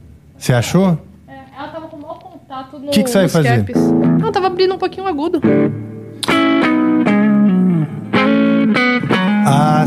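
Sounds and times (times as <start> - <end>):
speech: 0.4 - 1.1, 2.6 - 6.4
amplified semi-acoustic electric guitar playing a melodic phrase: 3.0 - 9.8.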